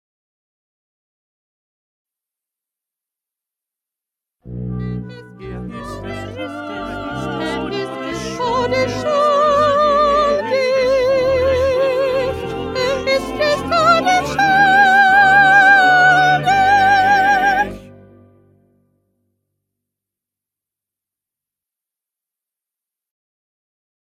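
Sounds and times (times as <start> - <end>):
second soprano singing: 4.5 - 18.2.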